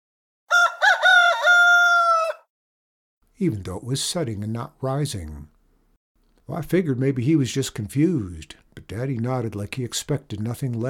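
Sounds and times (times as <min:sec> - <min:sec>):
rooster crowing cock-a-doodle-doo: 0:00.5 - 0:02.5
speech: 0:03.4 - 0:05.6, 0:06.5 - 0:10.8.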